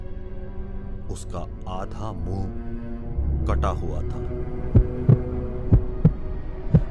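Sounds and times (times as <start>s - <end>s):
speech: 1.1s - 2.8s, 3.4s - 4.6s
heavy pounding heartbeat sound effect: 4.6s - 6.8s.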